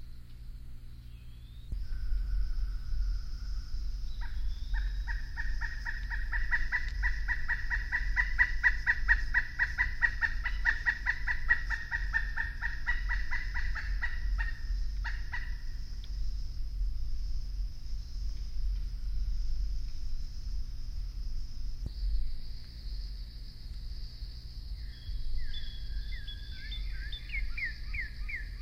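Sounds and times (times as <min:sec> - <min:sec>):
low steady rumble: 0:00.0 - 0:28.5
pileated woodpecker clucking calls: 0:04.1 - 0:15.9.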